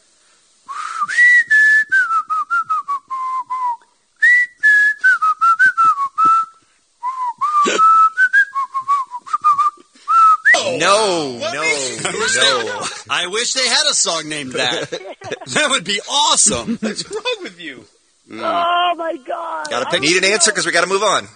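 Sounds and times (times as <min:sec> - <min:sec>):
person whistling a song melody: 0:00.7 - 0:10.7
laughter: 0:10.6 - 0:13.3, 0:14.2 - 0:17.6, 0:18.6 - 0:21.0
speech: 0:11.0 - 0:21.3.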